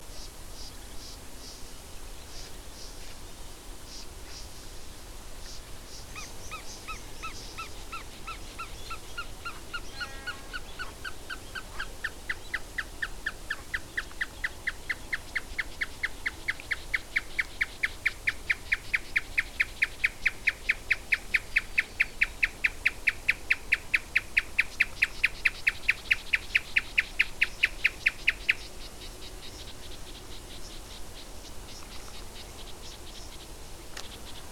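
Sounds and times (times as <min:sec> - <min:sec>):
Marsh tapaculo calling: 0:05.4 - 0:34.5.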